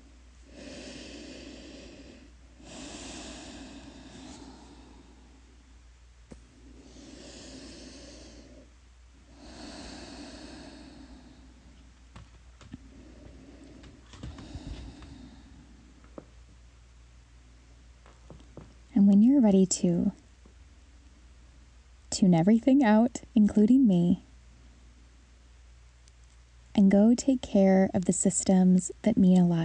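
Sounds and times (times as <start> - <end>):
slow deep breathing during a guided breathing exercise: 0.0 - 5.8, 6.4 - 16.5
speech: 19.1 - 20.2, 22.2 - 24.3, 26.8 - 29.6.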